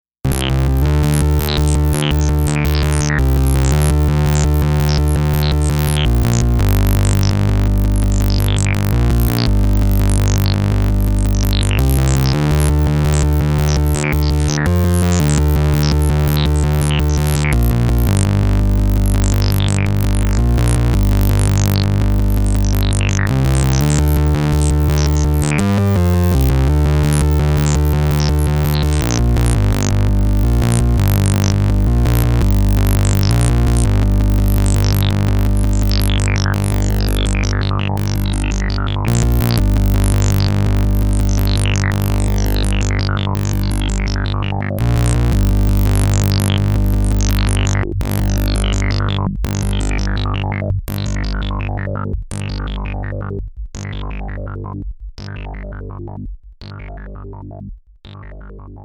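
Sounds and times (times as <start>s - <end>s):
dry synthesizer mix: 0.2s - 58.8s.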